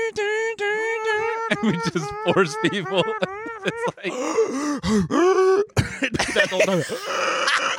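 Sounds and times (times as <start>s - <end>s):
laughter: 0.0s - 7.7s
man gasping and groaning in strained breathy bursts: 1.5s - 6.0s, 6.8s - 7.7s
speech: 1.5s - 7.7s.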